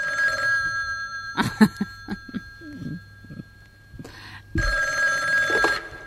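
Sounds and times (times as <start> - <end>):
telephone bell ringing: 0.0 - 6.0
laughter: 1.4 - 2.5.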